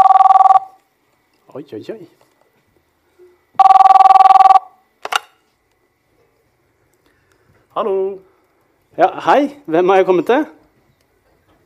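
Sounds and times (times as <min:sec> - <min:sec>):
telephone ringback tone on an outgoing call: 0:00.0 - 0:00.8, 0:03.6 - 0:04.8
speech: 0:01.6 - 0:02.3, 0:07.8 - 0:08.3, 0:09.0 - 0:10.6.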